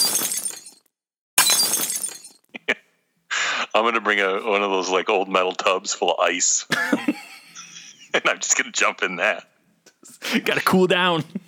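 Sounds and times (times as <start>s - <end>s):
glass window smashing: 0.0s - 0.8s, 1.4s - 2.5s
glass debris tinkling as it settles: 0.0s - 2.5s
laughter: 2.5s - 4.7s, 6.7s - 8.8s, 10.0s - 11.4s
speech: 3.8s - 7.2s, 8.2s - 9.5s, 10.2s - 11.4s.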